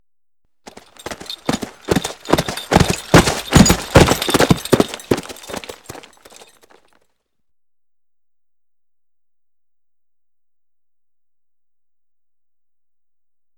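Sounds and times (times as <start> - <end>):
galloping: 0.7 - 6.8.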